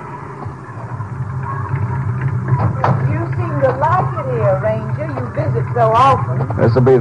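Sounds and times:
car engine rumbling: 0:00.0 - 0:07.0
speech: 0:05.8 - 0:07.0.

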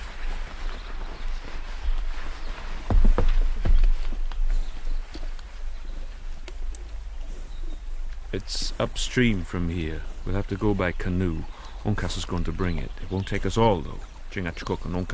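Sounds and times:
faint bird calls: 0:00.0 - 0:15.1
horses' hooves clip-clopping at a walking pace in the wilderness: 0:00.0 - 0:15.1
steady outdoor hiss: 0:00.0 - 0:15.1
hollow thuds: 0:02.7 - 0:05.2
speech: 0:08.3 - 0:15.1.

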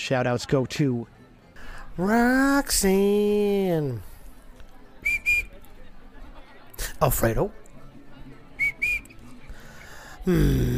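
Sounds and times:
speech: 0:00.1 - 0:01.2, 0:02.0 - 0:04.1, 0:07.0 - 0:07.6, 0:10.3 - 0:10.7
person whistling: 0:05.0 - 0:05.5, 0:08.6 - 0:09.1.

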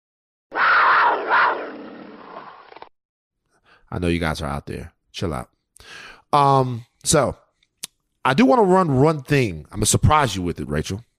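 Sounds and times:
mountain lion roar sound effect: 0:00.6 - 0:02.7
speech: 0:03.9 - 0:07.4, 0:08.2 - 0:11.1.

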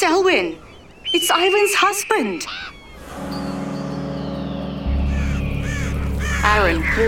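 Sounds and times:
speech: 0:00.0 - 0:03.3, 0:06.4 - 0:07.0
flock of birds cawing harshly: 0:00.2 - 0:07.0
deep rumble: 0:03.0 - 0:07.0.

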